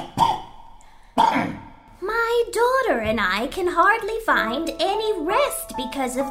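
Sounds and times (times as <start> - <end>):
man coughing harshly: 1.2 - 1.7
speech: 2.4 - 6.3.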